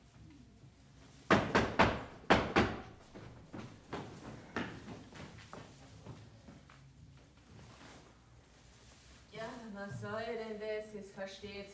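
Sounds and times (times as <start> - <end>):
knocking on a heavy palace door: 1.3 - 3.2
speech: 9.8 - 11.7.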